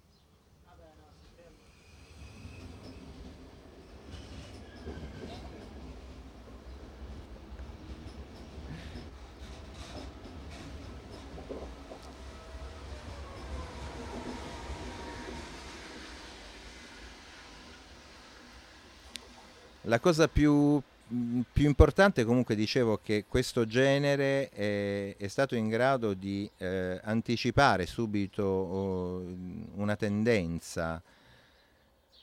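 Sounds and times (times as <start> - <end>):
train passing with rumble of wheels and carriages: 1.2 - 21.9
speech: 19.9 - 31.2.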